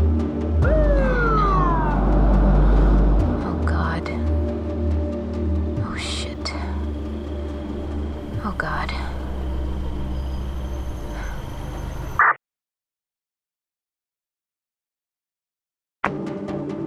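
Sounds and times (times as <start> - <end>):
police car siren whoop at Slab City: 0.6 - 3.6
steady low engine rumble: 0.7 - 12.2.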